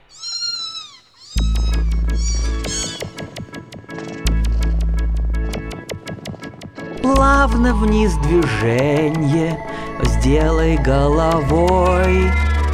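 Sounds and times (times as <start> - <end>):
cat meowing: 0.0 - 3.3
loud bouncy music track with a steady beat: 1.4 - 12.7
speech: 7.1 - 12.7.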